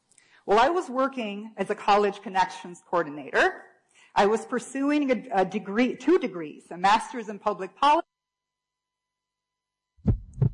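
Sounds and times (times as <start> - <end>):
speech: 0.5 - 8.0
heartbeat thumping: 10.0 - 10.5.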